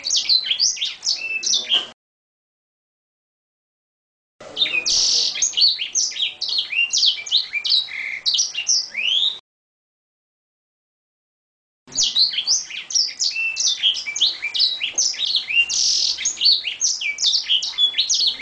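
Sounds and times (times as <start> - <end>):
bird song of chirps, slurred whistles and trills: 0.0 - 2.0, 4.4 - 9.4, 11.9 - 18.3.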